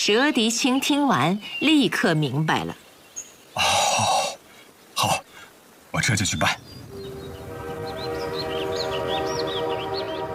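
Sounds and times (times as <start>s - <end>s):
speech: 0.0s - 2.8s, 3.6s - 4.1s, 6.0s - 6.8s
thin high chirping squeals of passenger train: 6.4s - 10.3s
moving passenger train rumbling: 6.8s - 10.3s.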